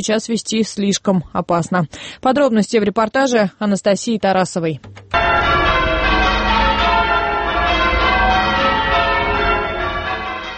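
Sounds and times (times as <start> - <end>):
speech: 0.0 - 5.0
cathedral church bells ringing in a dense peal: 5.1 - 10.5.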